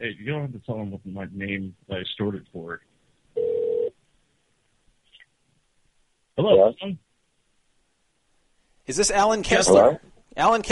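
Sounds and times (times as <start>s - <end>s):
speech: 0.0s - 2.9s, 6.4s - 7.0s, 8.9s - 10.7s
telephone line electronic ring tone: 3.4s - 3.9s.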